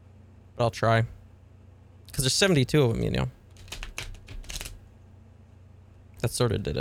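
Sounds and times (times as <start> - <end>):
speech: 0.6 - 1.2, 2.2 - 3.4, 6.2 - 6.7
large deck of thick tarot cards being shuffled: 2.8 - 4.8.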